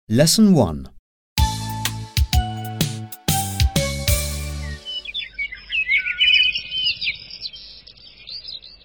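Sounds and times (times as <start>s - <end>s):
speech: 0.1s - 0.9s
brief musical phrase: 1.4s - 5.1s
several birds chirping and trilling in the morning woods: 4.0s - 8.8s.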